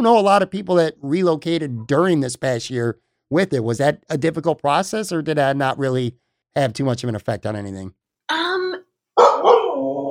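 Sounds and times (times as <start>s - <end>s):
speech: 0.0s - 8.4s
dog barking: 9.2s - 10.1s.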